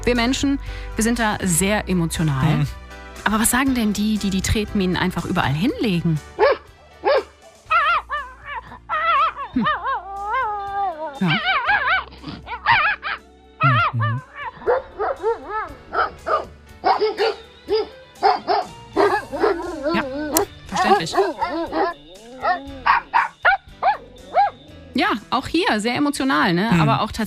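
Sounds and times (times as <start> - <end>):
speech: 0.1 - 6.5, 25.8 - 27.2
several dogs barking and yipping excitedly: 6.3 - 25.0.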